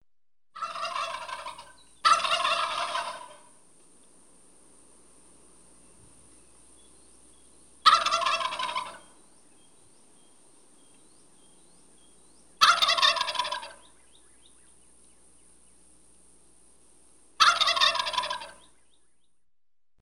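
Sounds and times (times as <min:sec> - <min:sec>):
wild turkey screaming: 0:00.6 - 0:03.5, 0:07.8 - 0:15.2, 0:17.4 - 0:19.1.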